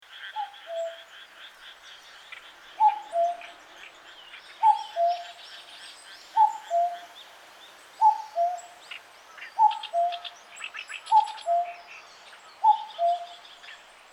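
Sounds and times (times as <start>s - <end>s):
common cuckoo calling: 0.4s - 1.1s, 2.8s - 3.6s, 4.6s - 5.4s, 6.4s - 7.0s, 8.0s - 8.8s, 9.6s - 10.3s, 11.1s - 11.9s, 12.6s - 13.4s.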